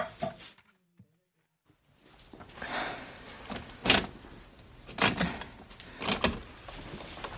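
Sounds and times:
fridge door opening and shutting: 2.6 - 7.3.

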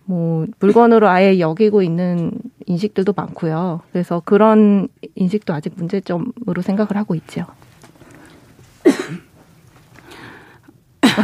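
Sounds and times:
speech: 0.1 - 7.6
sharp, harsh coughs: 8.8 - 9.3, 11.0 - 11.2.

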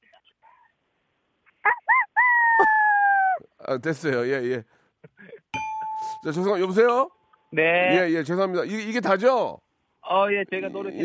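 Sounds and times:
person imitating a chicken with a rooster-like crow: 1.6 - 3.5, 10.6 - 11.0
speech: 3.7 - 4.8, 6.2 - 11.0.

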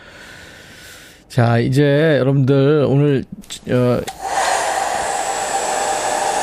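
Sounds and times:
speech: 1.3 - 4.2
hair dryer running: 4.1 - 6.4.

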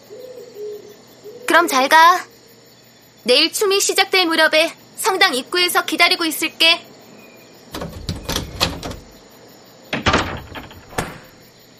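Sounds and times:
speech: 1.5 - 2.3, 3.2 - 6.9
door bolt sliding home with quick clicks: 7.8 - 9.2
metal door bolt rattling and clacking as it is drawn back: 7.8 - 9.2, 9.9 - 11.4.

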